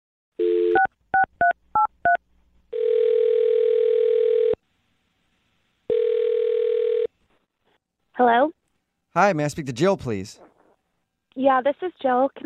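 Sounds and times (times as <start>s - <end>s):
telephone tone: 0.4s - 1.3s, 2.8s - 4.6s, 5.9s - 7.1s
long telephone ringing tones: 2.7s - 4.6s, 5.9s - 7.1s
speech: 9.2s - 10.5s, 11.4s - 12.4s.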